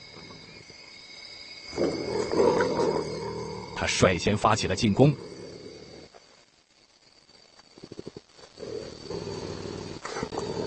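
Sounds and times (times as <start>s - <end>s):
faint insect-like buzz: 0.0s - 10.6s
wild animal threatening growl: 1.7s - 6.2s, 7.8s - 10.6s
speech: 3.8s - 5.3s.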